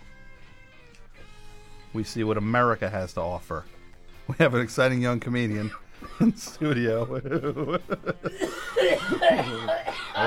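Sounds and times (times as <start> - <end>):
speech: 2.0 - 10.2
laughter: 5.6 - 10.2
man giving raspy wheezing coughs: 8.3 - 10.2.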